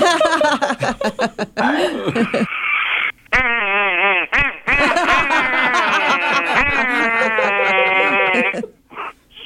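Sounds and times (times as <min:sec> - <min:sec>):
laughter: 0:00.0 - 0:02.6, 0:04.7 - 0:08.8
duck call blown to imitate a wounded duck: 0:02.3 - 0:09.2.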